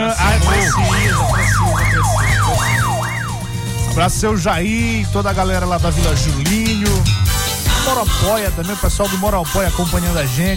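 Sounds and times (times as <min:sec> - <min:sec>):
ambulance siren wailing: 0:00.1 - 0:04.3
speech: 0:04.0 - 0:07.2, 0:07.8 - 0:10.5.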